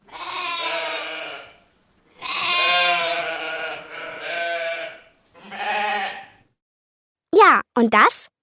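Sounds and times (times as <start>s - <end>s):
sheep bleating: 0.0s - 6.4s
speech: 7.4s - 8.3s.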